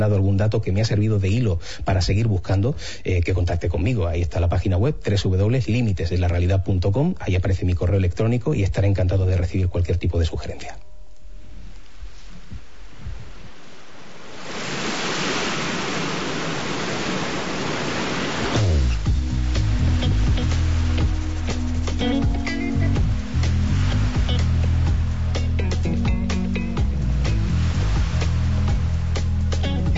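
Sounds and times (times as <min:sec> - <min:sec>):
speech: 0:00.0 - 0:10.9
Mediterranean sea surf washing onto a shore: 0:11.6 - 0:29.9
music: 0:18.6 - 0:29.9.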